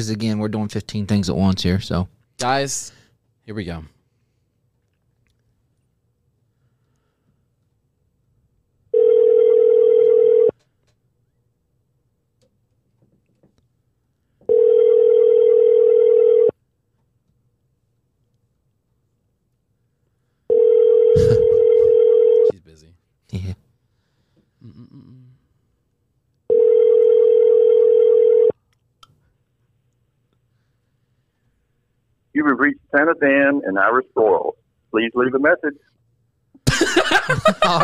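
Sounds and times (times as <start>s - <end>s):
speech: 0.0s - 4.0s, 23.3s - 23.6s, 32.4s - 35.9s, 36.9s - 37.8s
telephone ringback tone on an outgoing call: 8.9s - 10.5s, 14.5s - 16.6s, 20.5s - 22.5s, 26.5s - 28.5s
laughter: 21.2s - 21.9s, 36.7s - 37.8s.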